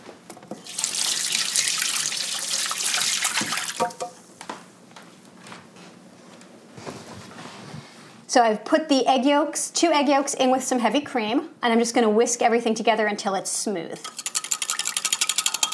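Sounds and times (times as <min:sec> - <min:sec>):
running tap water as egg-covered hands are washed: 0:00.6 - 0:04.1
speech: 0:08.4 - 0:14.2.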